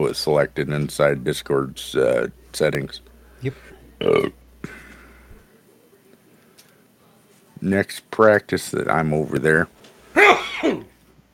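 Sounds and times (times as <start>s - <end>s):
speech: 0.0s - 4.8s, 7.6s - 10.9s
loud sneeze: 10.2s - 10.9s.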